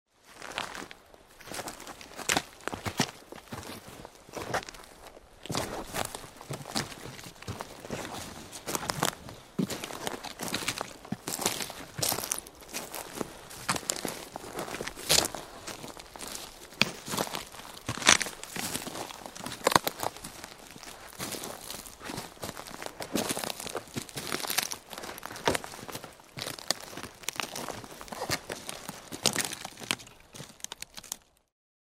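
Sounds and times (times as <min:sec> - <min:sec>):
footsteps in a forest: 0:00.2 - 0:31.4.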